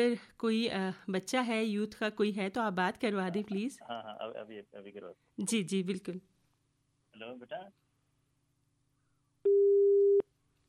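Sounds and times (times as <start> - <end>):
speech: 0.0 - 6.3, 7.2 - 7.8
telephone busy-signal beep after a call disconnects: 9.5 - 10.2.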